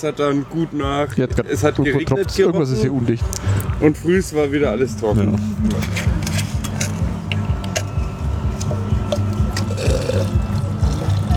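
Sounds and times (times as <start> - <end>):
speech: 0.0 - 6.1
water dripping: 6.6 - 11.3
water poured out of a crushed-ice container: 8.6 - 11.3.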